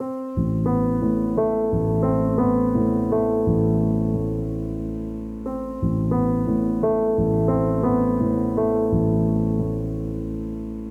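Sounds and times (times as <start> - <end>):
mournful piano motif in A minor: 0.0 - 10.8.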